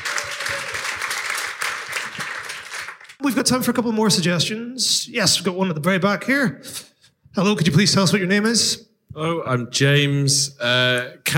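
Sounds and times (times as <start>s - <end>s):
audience applause at a live show: 0.0s - 3.2s
speech: 3.2s - 11.3s.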